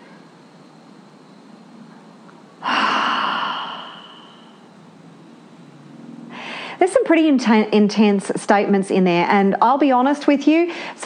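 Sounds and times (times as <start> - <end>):
deep breath during a guided breathing exercise: 2.6 - 4.7, 6.3 - 6.8
speech: 6.8 - 11.0.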